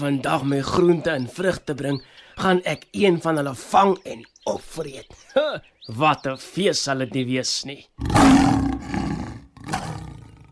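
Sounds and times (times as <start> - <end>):
speech: 0.0 - 9.0
lion roaring: 8.0 - 10.5.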